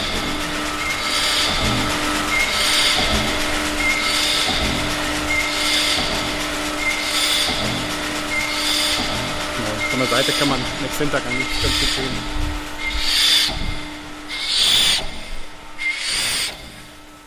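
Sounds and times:
120-year-old two-piston air compressor chugging: 0.0s - 17.2s
speech: 10.2s - 12.4s.

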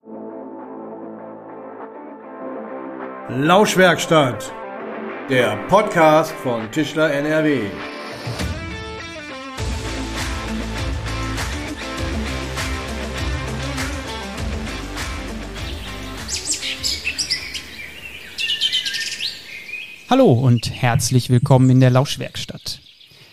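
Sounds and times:
steady rhythmic music bed: 0.7s - 17.2s
speech: 3.3s - 4.6s, 5.3s - 8.4s, 20.1s - 22.5s
bright birdsong chirps: 15.6s - 23.3s.

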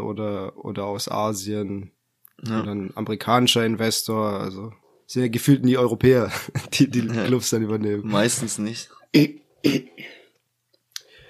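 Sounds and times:
speech: 0.0s - 10.2s
laughter: 6.2s - 7.5s
person clearing throat: 9.1s - 10.3s.

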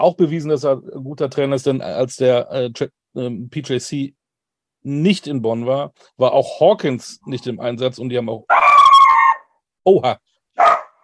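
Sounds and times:
speech: 0.0s - 4.2s, 4.8s - 8.7s, 9.8s - 10.8s
dog barking: 8.5s - 9.4s, 10.6s - 11.0s.

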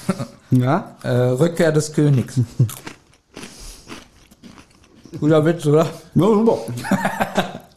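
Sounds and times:
speech: 0.1s - 2.9s, 5.1s - 7.7s
crisp crunching of someone eating a snack: 2.0s - 6.0s
laughter: 6.7s - 7.7s.

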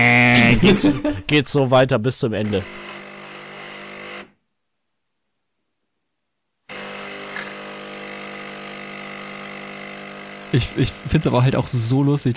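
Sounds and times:
laughter: 0.2s - 1.3s
speech: 0.6s - 2.9s, 10.5s - 12.3s
coffee machine brewing with pump hum: 2.5s - 4.2s, 6.7s - 11.5s.

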